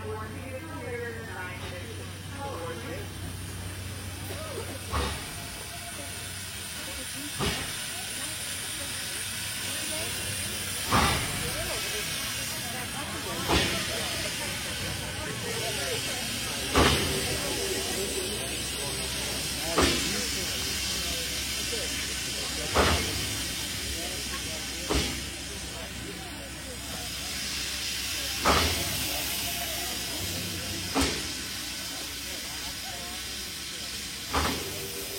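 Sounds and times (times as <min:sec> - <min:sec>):
old steam train from Durango to Silverton hissing: 0:00.0 - 0:35.1.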